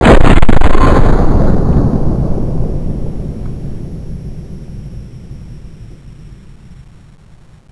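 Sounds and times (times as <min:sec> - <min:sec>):
gold weapon firing: 0:00.0 - 0:02.2.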